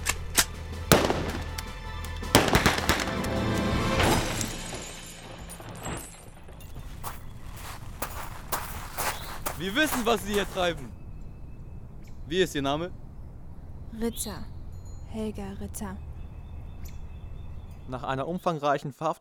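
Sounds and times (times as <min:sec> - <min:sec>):
gunshots fired at the tyres of a fleeing bread van: 0:00.0 - 0:01.6, 0:02.3 - 0:03.4
low rumbling noise of a fleeing bread van: 0:00.0 - 0:18.4
speech: 0:09.6 - 0:11.0, 0:12.3 - 0:13.0, 0:13.9 - 0:14.5, 0:15.1 - 0:16.1, 0:17.9 - 0:19.2.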